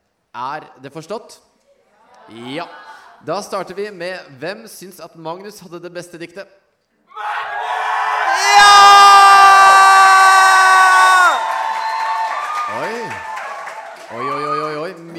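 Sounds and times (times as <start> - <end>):
speech: 0.4 - 1.5, 2.3 - 6.6
scattered shouts and high sliding yells from festival crowd: 7.1 - 11.3
live festival crowd cheering and whooping to vote in a poetry contest: 7.2 - 14.9.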